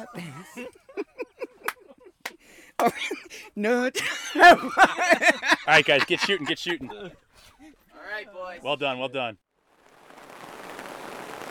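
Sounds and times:
speech: 0:00.0 - 0:01.0, 0:02.8 - 0:07.2, 0:08.2 - 0:09.4
laughter: 0:00.0 - 0:07.8
steady rain falling on a surface: 0:10.0 - 0:11.4.

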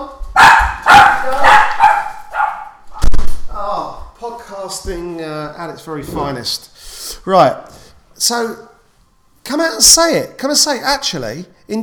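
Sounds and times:
dog barking with high whiny yips: 0:00.3 - 0:03.1
speech: 0:04.7 - 0:07.6, 0:08.2 - 0:08.7, 0:09.5 - 0:11.8.

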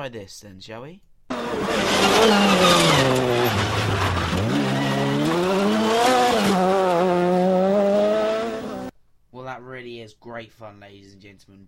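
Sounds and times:
speech: 0:00.0 - 0:06.7, 0:09.8 - 0:11.6
racing car engine revving accelerating through gears: 0:01.3 - 0:08.9.

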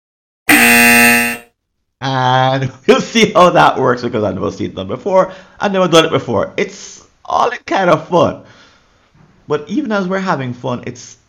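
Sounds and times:
harsh raspy buzzer: 0:00.5 - 0:01.5
speech: 0:02.1 - 0:08.6, 0:09.5 - 0:11.2.

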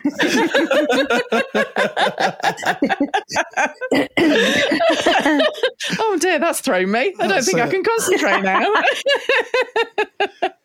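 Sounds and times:
laughter: 0:00.0 - 0:06.1, 0:07.2 - 0:10.6
speech: 0:00.0 - 0:10.6
person coughing harshly: 0:03.9 - 0:05.1.

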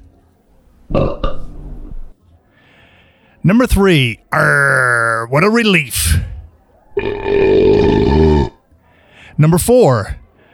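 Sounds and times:
loud belch made while rating beers: 0:00.9 - 0:01.5, 0:07.0 - 0:08.6
speech: 0:03.4 - 0:06.4, 0:09.4 - 0:10.2.

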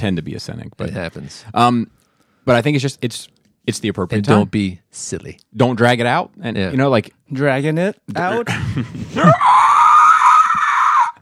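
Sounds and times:
speech: 0:00.0 - 0:09.8
person screaming into the microphone: 0:09.2 - 0:11.1.

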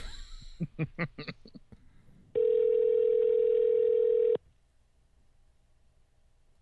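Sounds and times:
person chuckling: 0:00.0 - 0:01.9
electronic ringback tone of an outgoing phone call: 0:02.4 - 0:04.4.

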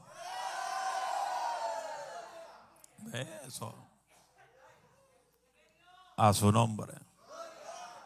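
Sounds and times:
large audience shouting with joy at a religious service: 0:00.0 - 0:02.8, 0:07.3 - 0:08.0
speech: 0:03.1 - 0:03.9, 0:06.2 - 0:07.1.

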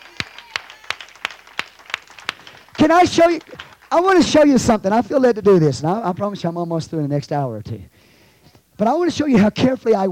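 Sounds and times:
audience clapping hands in praise: 0:00.0 - 0:04.8
speech: 0:02.8 - 0:07.9, 0:08.8 - 0:10.0.

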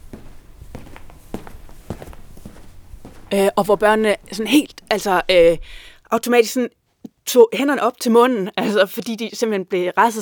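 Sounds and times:
footsteps walking down a hallway: 0:00.0 - 0:06.1
faint hum: 0:00.0 - 0:06.6
speech: 0:03.3 - 0:10.2.

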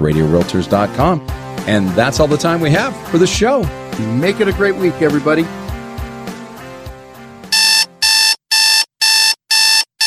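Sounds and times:
speech: 0:00.0 - 0:05.6
electronic alarm clock buzzing as a wake-up call: 0:07.5 - 0:10.0.

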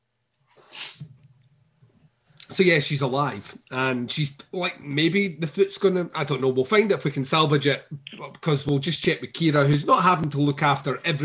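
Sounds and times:
sneeze: 0:00.7 - 0:01.0
speech: 0:02.6 - 0:11.2.

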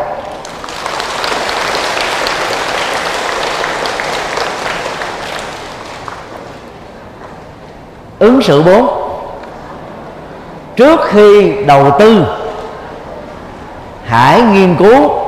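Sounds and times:
loud applause from a large group of children: 0:00.2 - 0:06.8
speech: 0:08.4 - 0:09.0, 0:10.8 - 0:12.4, 0:14.1 - 0:15.2.

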